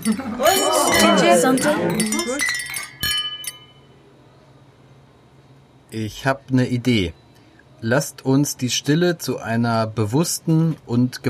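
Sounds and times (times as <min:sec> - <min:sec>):
several voices calling out together: 0:00.0 - 0:02.4
speech: 0:00.0 - 0:02.6, 0:05.9 - 0:07.2, 0:07.8 - 0:11.2
glasses clinking in a toast: 0:00.0 - 0:03.9.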